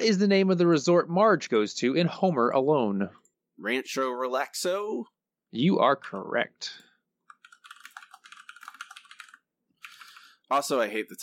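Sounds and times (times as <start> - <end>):
speech: 0.0 - 6.8, 10.5 - 11.2
typing on a computer keyboard: 7.3 - 10.4.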